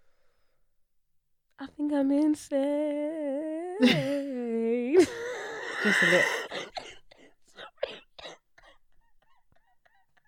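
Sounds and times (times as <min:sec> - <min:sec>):
speech: 0:01.6 - 0:04.3, 0:05.8 - 0:06.4
laughter: 0:05.0 - 0:06.8
person coughing: 0:05.7 - 0:10.2.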